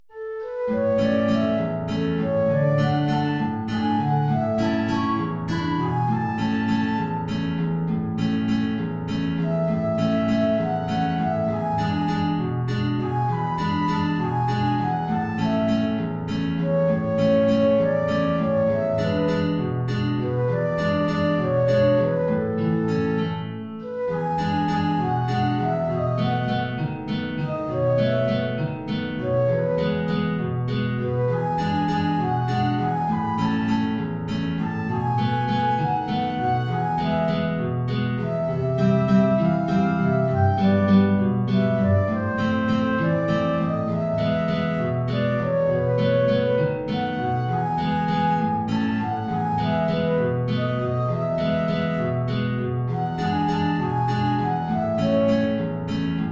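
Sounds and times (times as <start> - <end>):
guitar in A major: 0.1 - 56.3
transverse flute: 0.1 - 56.3.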